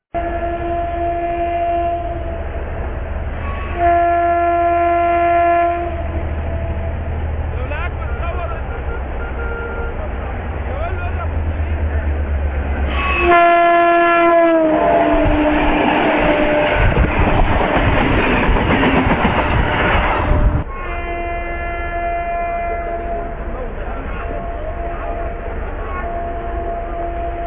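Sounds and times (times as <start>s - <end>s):
train horn blasts: 0.1s - 2.6s, 3.4s - 7.1s, 8.0s - 10.1s, 12.9s - 17.5s, 19.5s - 27.4s
train cars rumbling and clattering while passing: 0.2s - 27.4s.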